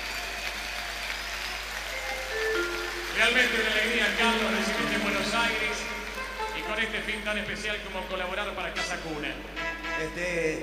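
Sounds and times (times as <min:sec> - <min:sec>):
audience applause at a live concert in Buenos Aires: 0:00.0 - 0:07.4
speech: 0:03.2 - 0:06.0, 0:06.7 - 0:10.6.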